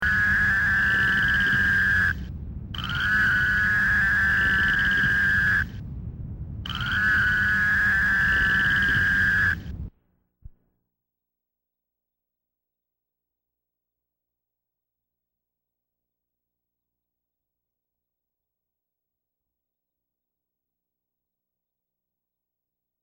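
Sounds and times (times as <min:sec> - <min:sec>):
Fowler's toad: 0:00.0 - 0:02.2, 0:02.8 - 0:05.8, 0:06.7 - 0:09.7.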